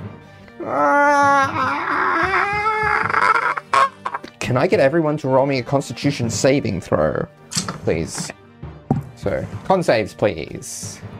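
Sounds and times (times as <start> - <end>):
speech: 0.6 - 1.8, 4.5 - 8.4, 9.2 - 11.1
person imitating a creature's wail during a tabletop fantasy role-playing game: 0.6 - 4.3.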